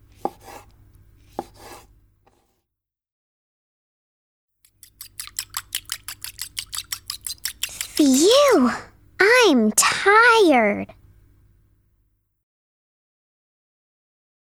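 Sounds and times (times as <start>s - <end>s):
knife chopping food: 0.1s - 2.4s, 4.7s - 8.4s
speech: 8.0s - 11.0s.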